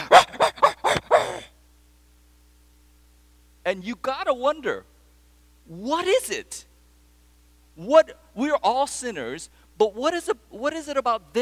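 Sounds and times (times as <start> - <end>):
dog barking frantically: 0.0 - 1.5
speech: 3.7 - 4.9, 5.7 - 6.7, 7.8 - 11.3.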